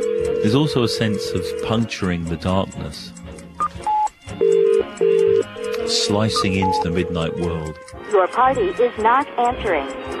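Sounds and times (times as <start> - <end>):
speech: 0.4 - 3.2, 5.9 - 10.1
electronic telephone beeps calling a phone box at night: 3.6 - 7.6.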